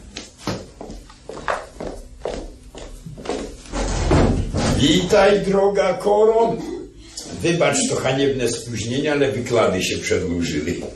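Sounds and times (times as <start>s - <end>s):
thudding footsteps: 0.1s - 5.0s
speech: 4.8s - 6.7s, 7.4s - 10.9s.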